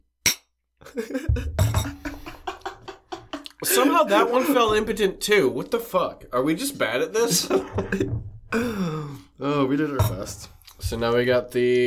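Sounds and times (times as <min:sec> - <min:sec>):
glasses clinking in a cheers toast: 0:00.3 - 0:00.5, 0:01.6 - 0:02.2
laughter: 0:00.8 - 0:04.8, 0:07.2 - 0:08.2
speech: 0:00.9 - 0:02.0, 0:03.7 - 0:11.8.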